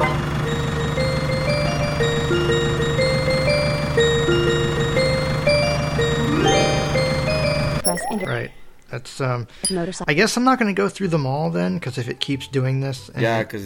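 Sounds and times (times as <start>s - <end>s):
low constant ice cream truck engine rumble: 0.0s - 7.8s
ice cream truck tinkling jingle: 0.0s - 8.4s
rising sweep of tones: 1.3s - 8.6s
speech: 8.3s - 13.6s.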